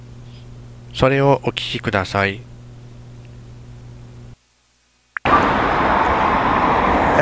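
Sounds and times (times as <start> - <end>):
low steady hum at a bus stop: 0.0 - 6.4
speech: 1.0 - 2.5
loud road traffic roar at a bus stop: 5.2 - 7.1.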